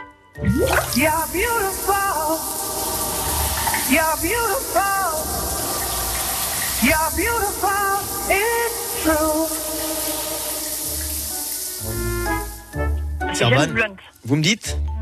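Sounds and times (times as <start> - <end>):
speech: 0.4 - 2.8, 3.9 - 5.5, 6.8 - 10.3, 13.4 - 14.9
shower water running: 0.4 - 12.9
man singing loudly: 1.0 - 2.6, 3.8 - 5.4, 6.8 - 10.3.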